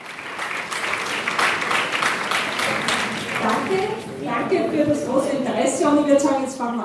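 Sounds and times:
crowd of about 400 people applauding at a public political meeting in Vienna Austria: 0:00.0 - 0:04.6
crowd murmuring at a public political meeting in Vienna Austria: 0:00.4 - 0:06.5.

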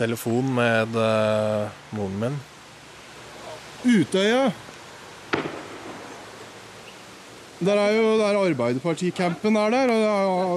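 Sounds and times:
speech: 0:00.0 - 0:02.5, 0:03.8 - 0:04.7, 0:05.3 - 0:05.6, 0:07.6 - 0:10.5
faint steady hiss: 0:00.0 - 0:10.5
gunshot: 0:05.3 - 0:06.2.

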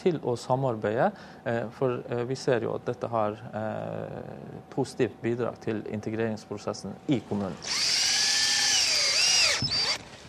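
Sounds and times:
speech: 0:00.0 - 0:08.2
power drill driving a screw: 0:07.6 - 0:10.0.

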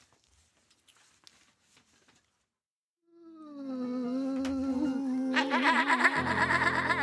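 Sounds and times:
person practicing experimental throat singing: 0:03.1 - 0:06.3
laughter: 0:05.3 - 0:07.0.

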